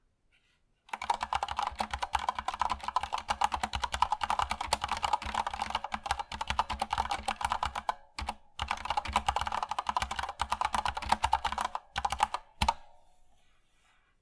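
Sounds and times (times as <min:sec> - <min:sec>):
K70 keyboard typing: 0:00.9 - 0:13.0.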